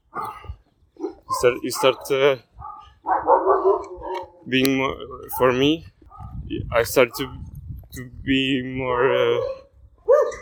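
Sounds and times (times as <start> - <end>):
dog barking: 0.0 - 4.5, 6.1 - 6.4, 7.1 - 7.4, 9.4 - 10.4
speech: 1.4 - 2.5, 4.5 - 5.9, 6.5 - 7.4, 8.0 - 9.6.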